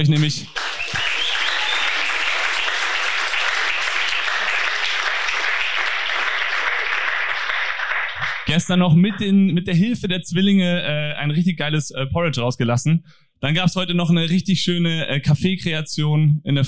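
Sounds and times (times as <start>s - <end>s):
speech: 0.0s - 1.0s, 8.5s - 16.6s
sustained loud crowd applause: 0.0s - 8.5s.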